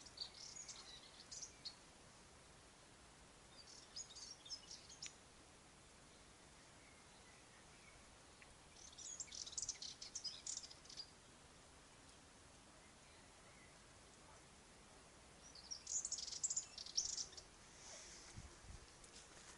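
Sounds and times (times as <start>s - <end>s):
subalpine warbler Sylvia subalpina song: 0.0s - 1.9s, 3.4s - 5.2s, 6.0s - 11.3s, 15.4s - 17.6s
faint background hiss: 0.0s - 19.5s.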